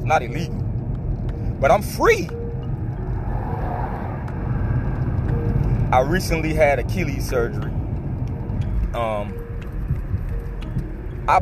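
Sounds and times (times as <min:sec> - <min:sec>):
car engine and road drone: 0:00.0 - 0:11.4
speech: 0:00.1 - 0:00.6, 0:01.6 - 0:02.4, 0:05.9 - 0:07.8, 0:08.9 - 0:09.4, 0:11.3 - 0:11.4.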